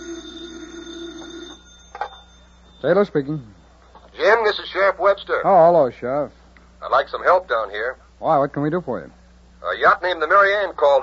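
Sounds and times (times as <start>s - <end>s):
telephone ringing with buzzy tone: 0.0s - 4.9s
speech: 2.8s - 3.6s, 4.3s - 11.0s.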